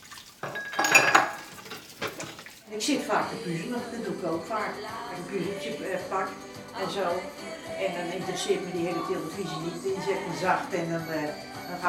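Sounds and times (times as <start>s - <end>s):
dishes and cutlery clattering during washing up: 0.4s - 2.6s
speech: 2.8s - 11.8s.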